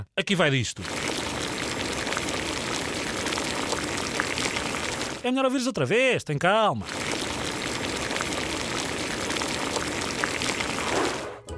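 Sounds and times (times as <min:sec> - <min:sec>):
speech: 0:00.1 - 0:01.1, 0:05.2 - 0:07.1
pot of water at a rolling boil: 0:00.8 - 0:05.3, 0:06.8 - 0:11.4.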